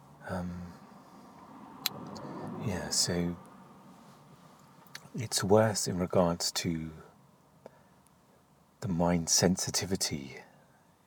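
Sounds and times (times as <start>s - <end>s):
car passing: 0.0s - 5.4s
traffic rumble on a road: 0.0s - 10.4s
speech: 2.6s - 3.5s, 5.2s - 7.1s, 8.8s - 10.5s.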